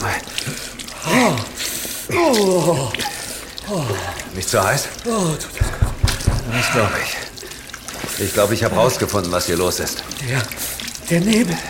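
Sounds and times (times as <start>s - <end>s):
water running from a tap in an old ship's galley: 0.0s - 11.6s
speech: 2.1s - 3.1s, 3.7s - 5.8s, 6.5s - 7.2s, 8.2s - 11.6s.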